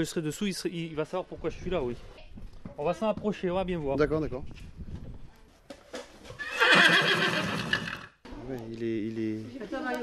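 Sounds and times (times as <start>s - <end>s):
speech: 0.0s - 4.8s, 8.5s - 10.0s
horse whinnying: 6.3s - 8.2s.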